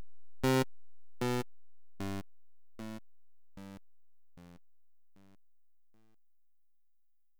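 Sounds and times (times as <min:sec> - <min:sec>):
8-bit buzzer: 0:00.5 - 0:01.4, 0:02.8 - 0:03.0, 0:03.6 - 0:03.8.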